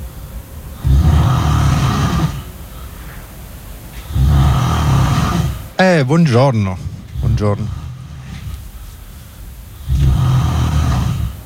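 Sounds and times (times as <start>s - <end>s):
person snoring: 0.8s - 2.8s, 3.9s - 11.4s
speech: 5.8s - 7.8s.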